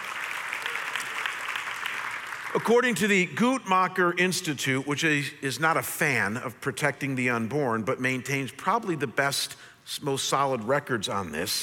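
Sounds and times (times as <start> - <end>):
crowd clapping: 0.0 - 3.3
speech: 2.5 - 11.6.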